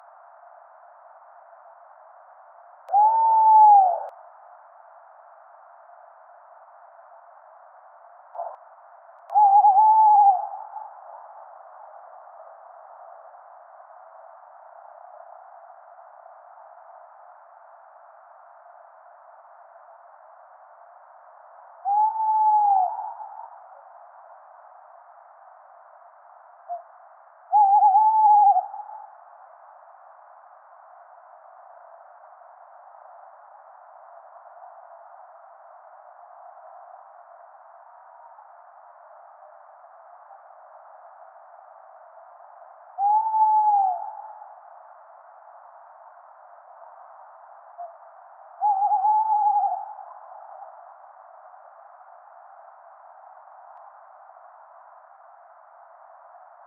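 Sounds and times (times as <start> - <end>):
tawny owl Strix aluco calling: 2.9 - 4.1, 8.4 - 8.6, 9.3 - 11.2, 21.8 - 23.6, 27.5 - 29.2, 43.0 - 44.6, 47.8 - 50.8.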